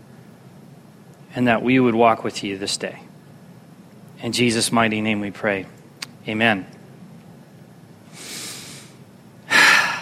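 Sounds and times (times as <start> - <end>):
speech: 1.3 - 3.1, 4.2 - 6.8
deep human breath before a church sermon: 8.1 - 10.0.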